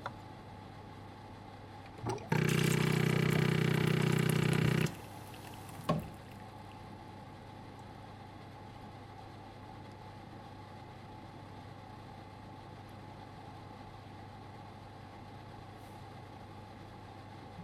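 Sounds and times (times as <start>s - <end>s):
coffee machine: 1.9s - 6.5s.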